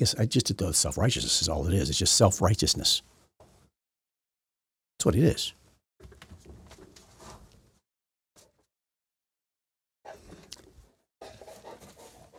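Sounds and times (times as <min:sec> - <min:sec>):
speech: 0:00.0 - 0:03.2, 0:05.0 - 0:06.1
dog panting heavily while taunted by a cat: 0:11.2 - 0:12.3.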